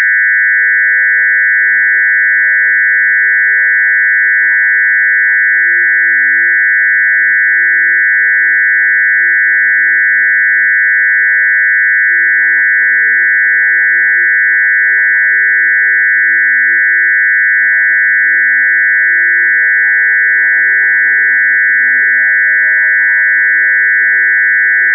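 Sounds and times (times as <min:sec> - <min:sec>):
noisy signal: 0:00.0 - 0:24.9.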